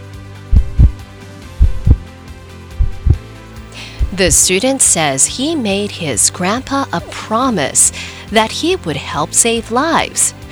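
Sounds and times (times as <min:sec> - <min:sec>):
heartbeat: 0:00.5 - 0:02.1, 0:02.8 - 0:03.2, 0:04.0 - 0:04.4
speech: 0:04.1 - 0:10.4.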